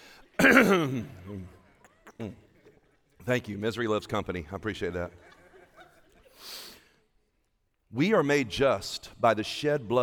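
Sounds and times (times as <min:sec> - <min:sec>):
group clearing throats: 0:00.4 - 0:01.2
speech: 0:00.4 - 0:01.6, 0:02.2 - 0:02.4, 0:03.2 - 0:05.3, 0:07.9 - 0:10.0
laughter: 0:05.1 - 0:06.4.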